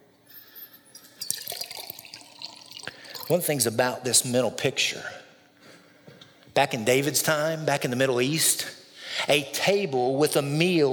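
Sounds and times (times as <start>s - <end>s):
water pouring: 0.9s - 3.6s
speech: 3.3s - 5.2s, 6.6s - 8.7s, 9.3s - 10.9s.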